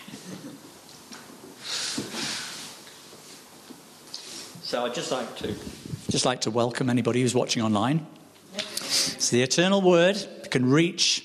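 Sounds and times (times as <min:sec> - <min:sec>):
quiet room noise: 0:00.0 - 0:11.2
person blowing nose into a tissue during a sermon: 0:01.6 - 0:02.8
speech: 0:04.7 - 0:08.2, 0:09.3 - 0:11.2.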